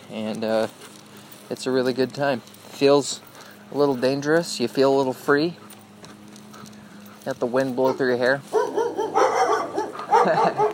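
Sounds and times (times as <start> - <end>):
speech: 0.1 - 0.9, 1.5 - 5.6, 7.2 - 8.6, 10.2 - 10.7
dog barking behind a screen door at Spruce and Hewitt streets: 7.9 - 10.7.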